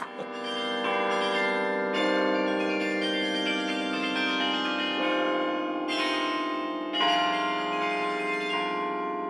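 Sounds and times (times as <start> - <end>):
carillon bells ringing from tower: 0.0 - 9.2.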